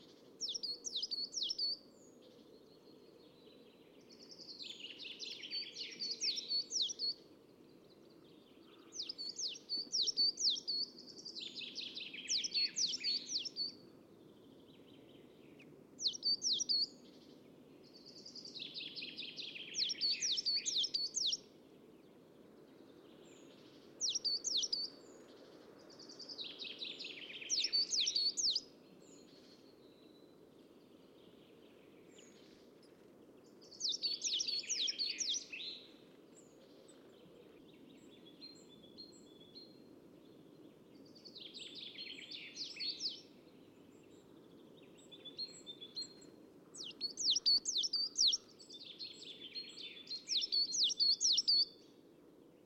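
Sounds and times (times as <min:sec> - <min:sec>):
birds in the garden: 0:00.0 - 0:52.6.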